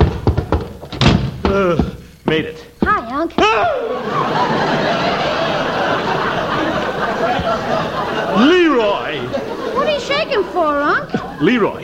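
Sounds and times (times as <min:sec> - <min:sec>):
stuck door thumping as someone forces it: 0:00.0 - 0:02.0
speech: 0:01.6 - 0:06.3, 0:07.0 - 0:11.8
laughter: 0:03.4 - 0:11.8.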